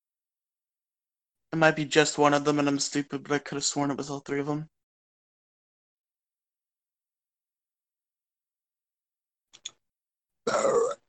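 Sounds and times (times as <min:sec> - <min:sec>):
speech: 0:01.5 - 0:04.8
faint quick clicks: 0:09.6 - 0:09.8
burp: 0:10.4 - 0:11.0.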